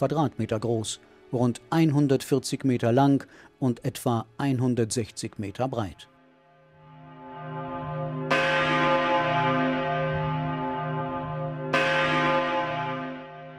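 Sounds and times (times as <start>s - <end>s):
speech: 0.0s - 6.1s
large church tower bells ringing: 6.9s - 13.5s.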